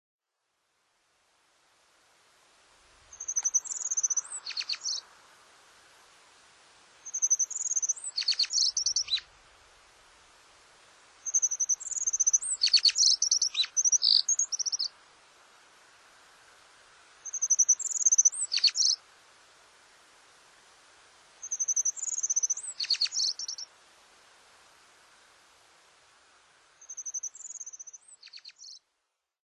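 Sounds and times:
Japanese accentor singing twittering trills and jingling notes: 0:03.1 - 0:05.0, 0:07.0 - 0:09.3, 0:11.2 - 0:14.9, 0:17.2 - 0:19.0, 0:21.4 - 0:23.7, 0:26.8 - 0:28.8.

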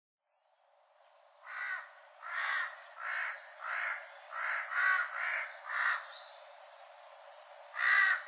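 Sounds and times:
faint background hiss: 0:00.2 - 0:08.2
large-billed crow calling on Ishigaki Island: 0:01.4 - 0:06.1, 0:07.7 - 0:08.2.

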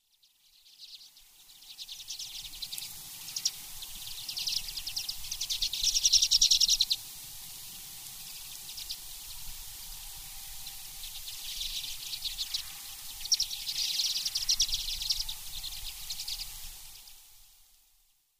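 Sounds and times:
common redpoll calling: 0:00.0 - 0:07.0, 0:10.6 - 0:17.1.

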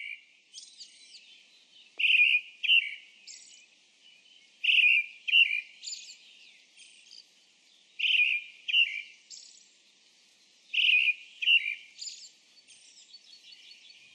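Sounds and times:
Brown-headed Thrush calling: 0:02.0 - 0:03.0, 0:04.6 - 0:06.0, 0:08.0 - 0:09.1, 0:10.8 - 0:11.9.

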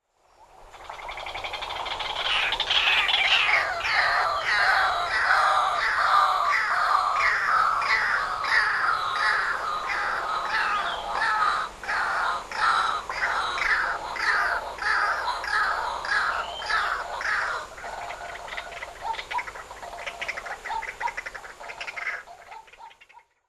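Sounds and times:
White-breasted Waterhens fighting in Iriomote Island Okinawa: 0:01.0 - 0:23.2.

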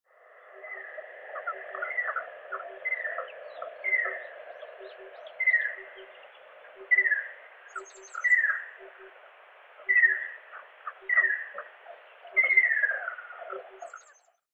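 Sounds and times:
ruddy kingfisher calling in Okutadami: 0:00.4 - 0:14.2.

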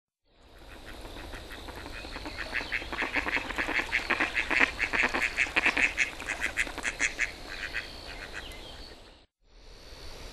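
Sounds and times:
Eastern Spot-billed Duck calling: 0:00.6 - 0:08.6.

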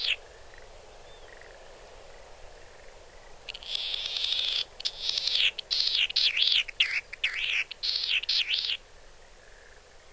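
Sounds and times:
Latham's snipe calling in Nagano, Japan: 0:00.0 - 0:00.2, 0:03.5 - 0:08.8.

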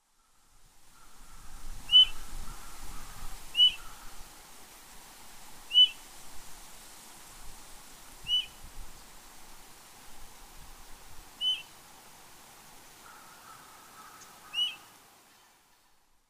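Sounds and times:
akauso calling: 0:01.0 - 0:04.2, 0:05.7 - 0:06.0, 0:08.3 - 0:08.6, 0:11.4 - 0:11.8, 0:13.0 - 0:15.5.

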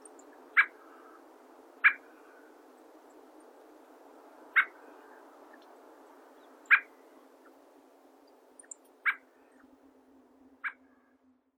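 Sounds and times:
dusky thrush calling in Chichibu: 0:00.6 - 0:01.2, 0:04.6 - 0:04.8, 0:06.6 - 0:06.9, 0:08.6 - 0:09.6.

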